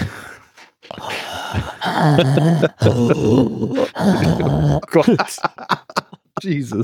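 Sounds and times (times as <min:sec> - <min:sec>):
heavy labored breathing: 0:00.0 - 0:04.9
throaty groans and grunts: 0:00.0 - 0:05.2
speech: 0:01.5 - 0:05.8, 0:06.4 - 0:06.8
laughter: 0:01.6 - 0:06.8.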